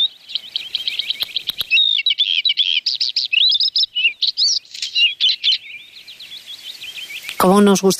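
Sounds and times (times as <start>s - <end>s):
single bird singing a song of rapid chirps, trills and warbled phrases: 0.0s - 7.9s
sharp clicks: 1.2s - 1.8s
speech: 7.5s - 7.9s.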